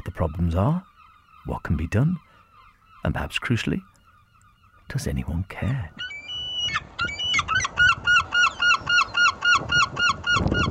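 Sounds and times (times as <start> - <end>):
speech: 0.2 - 2.2, 3.0 - 3.9, 4.9 - 7.2
herring gull laughing calls: 5.9 - 10.6.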